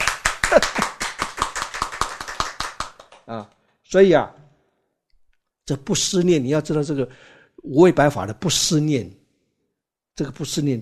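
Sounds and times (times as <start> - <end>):
hands clapping in a quick steady rhythm: 0.0 - 3.6
speech: 0.5 - 0.8, 3.3 - 4.4, 5.7 - 9.2, 10.2 - 10.7.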